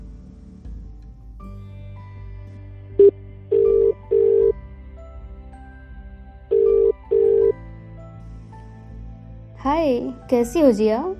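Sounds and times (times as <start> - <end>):
phone call ringback tone beeps: 3.0 - 4.6, 6.5 - 7.6
speech: 9.7 - 11.1.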